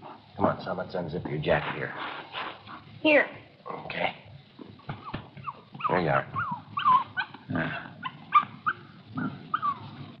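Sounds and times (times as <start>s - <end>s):
speech: 0.4s - 4.2s, 6.0s - 6.4s
female puppy yipping and whimpering: 4.9s - 10.0s.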